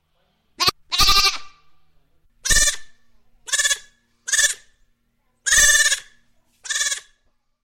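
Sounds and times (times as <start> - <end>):
goat bleating: 0.6 - 1.6, 2.5 - 2.8, 3.4 - 4.6, 5.5 - 7.1.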